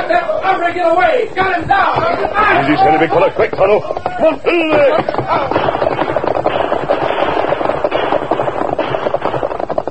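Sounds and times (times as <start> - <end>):
speech: 0.1 - 6.1
heavy gunfire from a Western shootout: 5.0 - 9.8.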